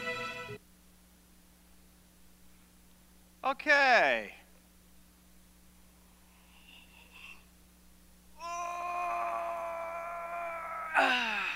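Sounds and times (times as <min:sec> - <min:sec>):
speech: 0:03.5 - 0:04.4
person yawning: 0:08.4 - 0:11.5.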